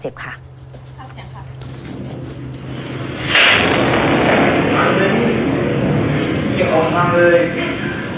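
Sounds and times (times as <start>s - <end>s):
speech: 0.0s - 1.4s, 7.1s - 7.8s
harsh crackling and hissing of exploded computer: 0.9s - 8.1s
computer bursting with a loud bang from a lightning strike: 2.6s - 7.5s.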